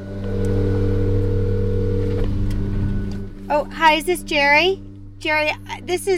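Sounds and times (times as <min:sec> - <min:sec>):
leaf blower engine roaring: 0:00.0 - 0:03.8
speech: 0:03.5 - 0:06.1.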